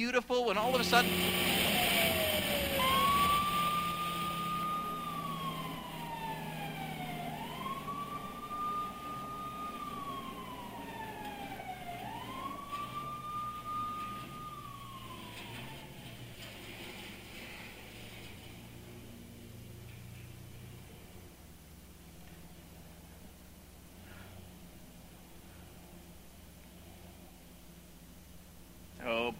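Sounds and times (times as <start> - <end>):
speech: 0.0 - 1.7, 29.1 - 29.3
low rumble of road traffic: 0.0 - 29.3
police siren wailing as police pull a driver over: 0.4 - 21.4, 29.0 - 29.3.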